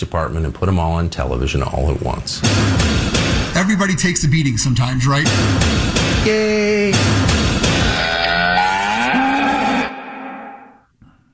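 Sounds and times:
speech: 0.0s - 7.3s
cow mooing loudly: 7.8s - 10.8s.

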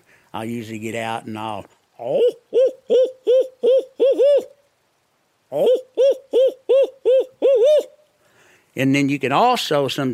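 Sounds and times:
speech: 0.3s - 3.9s, 5.5s - 6.6s, 8.8s - 10.1s
imitated owl hooting as a turkey hunter's locator call: 1.9s - 8.1s.

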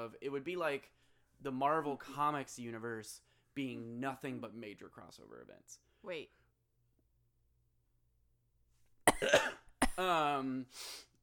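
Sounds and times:
speech: 0.1s - 6.4s, 9.2s - 11.1s
person clearing throat with a groan: 9.1s - 10.3s
person coughing: 9.1s - 10.3s.

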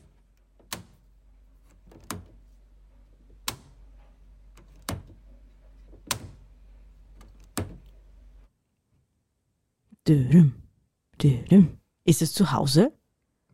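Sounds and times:
door being opened and shut: 0.0s - 8.1s
low steady hum: 0.0s - 8.5s
speech: 10.1s - 10.6s, 11.2s - 13.0s.

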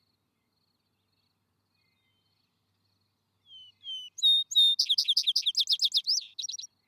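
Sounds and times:
vesper sparrow singing: 3.4s - 6.8s.

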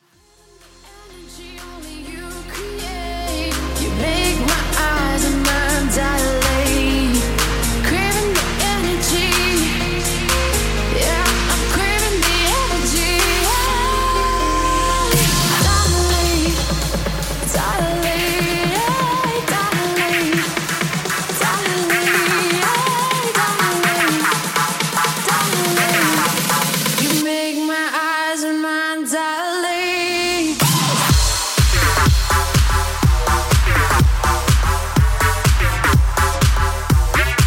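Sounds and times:
heavy bass: 0.0s - 27.1s, 30.4s - 37.4s
synth chords: 0.0s - 27.2s, 30.1s - 37.4s
loud electronic dance music: 0.0s - 37.4s
bright hi-hats: 0.4s - 27.7s, 30.3s - 37.4s
steady pounding kick drum: 15.1s - 21.8s, 31.1s - 37.4s.

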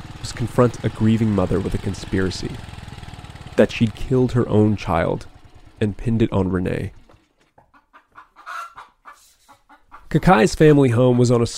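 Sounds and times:
speech: 0.3s - 2.7s, 3.6s - 7.0s, 10.1s - 11.5s
chickens clucking and squawking on a small farm of banana trees and cassava plants: 7.1s - 10.2s.

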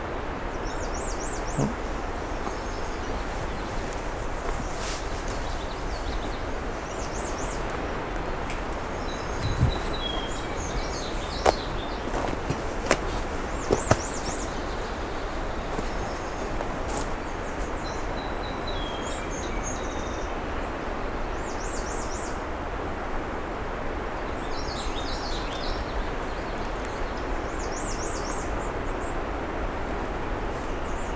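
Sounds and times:
steady outdoor hiss: 0.0s - 31.1s
songbird calling, possibly a redstart: 0.5s - 20.7s, 24.4s - 29.3s
faint crunching footsteps: 1.4s - 17.9s
speech: 1.6s - 1.8s.

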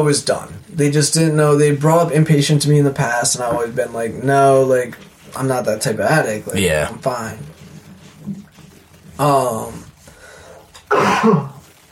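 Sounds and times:
speech: 0.0s - 7.5s, 9.2s - 9.8s, 10.9s - 11.5s
quiet breathing: 6.5s - 10.8s
throat clearing from someone with a tickle in the throat: 10.8s - 11.6s.

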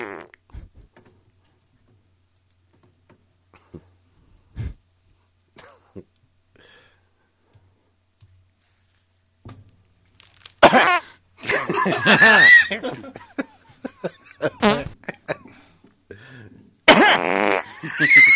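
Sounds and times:
long loud sputtering fart: 0.0s - 0.7s, 16.9s - 17.7s
faint clicks and taps: 0.4s - 3.3s, 7.4s - 10.5s
laughter: 11.4s - 15.7s, 17.6s - 18.3s.

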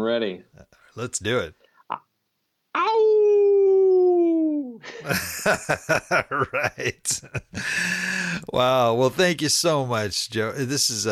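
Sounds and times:
speech: 0.0s - 2.1s, 4.8s - 11.0s
person imitating a hound dog howl: 2.8s - 4.8s
laughter: 4.8s - 8.8s.

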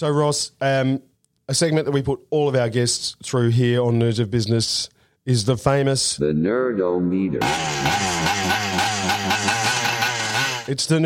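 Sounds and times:
speech: 0.0s - 9.2s, 10.7s - 11.0s
small two-stroke engine revving: 7.4s - 10.7s.

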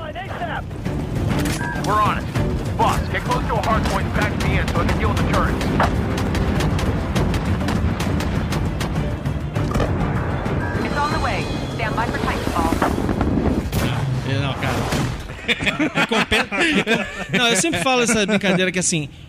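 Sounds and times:
speech: 0.6s - 1.1s, 1.9s - 2.3s, 3.2s - 6.3s, 15.5s - 19.2s
booming impacts in video game robot battle: 2.2s - 15.4s
video game giant robot battle heavy gunfire: 2.8s - 9.4s
laughter: 15.3s - 18.9s.

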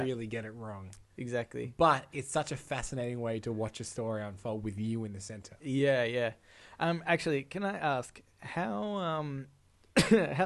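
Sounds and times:
speech: 0.0s - 10.4s
person coughing directly into microphone: 10.0s - 10.4s.

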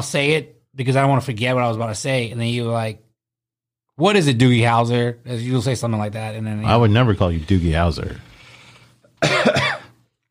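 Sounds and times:
speech: 0.0s - 3.0s, 4.0s - 8.3s
faint breathy lead-in: 8.2s - 9.2s
person coughing harshly: 9.2s - 10.0s.

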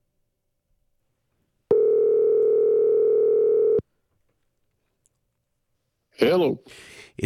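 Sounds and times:
telephone dial tone while placing a call: 1.7s - 3.8s
speech: 6.2s - 7.2s.

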